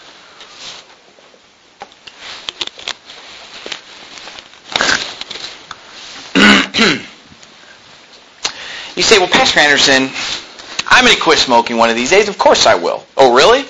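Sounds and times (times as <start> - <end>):
person clearing throat: 4.7 - 5.1, 6.3 - 7.2
person coughing: 6.4 - 7.2
speech: 6.8 - 7.0, 9.0 - 10.4, 11.0 - 13.6.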